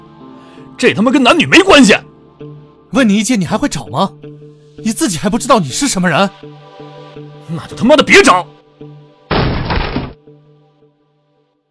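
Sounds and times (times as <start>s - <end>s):
speech: 0.6s - 6.6s, 7.5s - 8.6s
fist slamming into a door: 9.3s - 10.2s.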